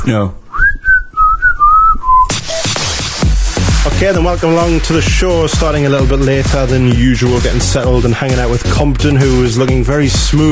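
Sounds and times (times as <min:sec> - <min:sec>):
speech: 0:00.0 - 0:00.4, 0:04.0 - 0:10.4
person attempting to whistle: 0:00.5 - 0:02.9.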